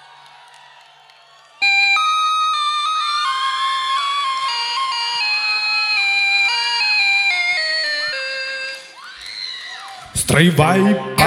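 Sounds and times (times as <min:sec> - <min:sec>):
bright electronic keyboard tones in experimental music: 0:01.6 - 0:08.9, 0:10.6 - 0:11.2
speech: 0:10.4 - 0:11.1.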